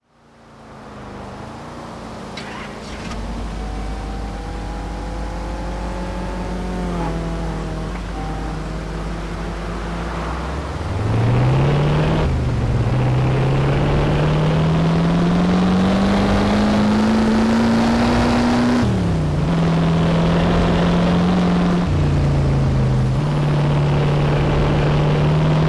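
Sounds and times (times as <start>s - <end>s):
1968 Plymouth Barracuda Formula-S custom car engine: 0.0s - 25.6s.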